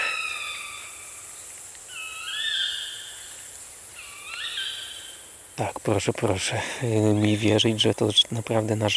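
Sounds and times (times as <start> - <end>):
tawny owls calling in forest at night: 0.0 - 5.3
quiet night-time hiss: 0.0 - 8.9
speech: 5.6 - 8.9.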